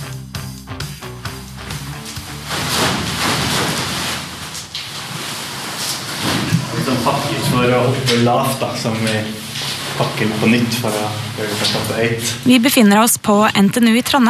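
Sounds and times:
parachute fabric rustling while being gathered and folded: 2.0 - 12.6
speech: 7.0 - 9.4, 10.0 - 14.2.

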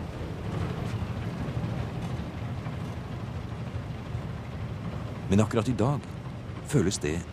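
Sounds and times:
coastal ship engine and propeller rumble heard in a cabin above the propeller: 0.0 - 7.3
speech: 5.3 - 7.3.

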